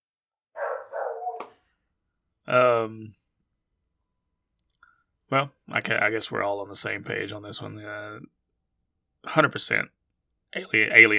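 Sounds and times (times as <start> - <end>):
dog barking: 0.6 - 1.6
speech: 2.5 - 3.2, 5.3 - 8.4, 9.2 - 11.1.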